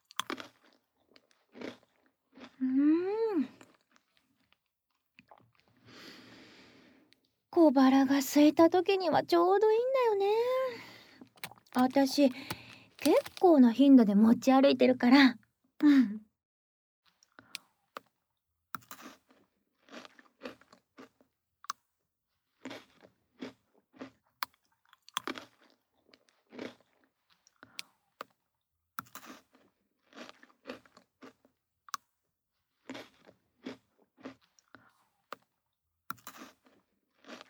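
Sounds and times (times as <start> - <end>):
crunching chocolate-coated biscuit sticks while eating: 0.0 - 2.6, 10.4 - 13.6, 18.8 - 21.8, 22.5 - 37.4
speech: 7.7 - 10.5, 11.8 - 16.2.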